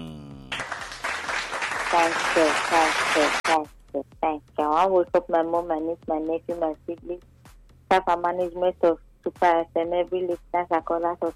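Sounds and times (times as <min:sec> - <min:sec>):
crowd applause: 0:00.5 - 0:03.4
speech: 0:01.9 - 0:07.3, 0:07.9 - 0:11.3.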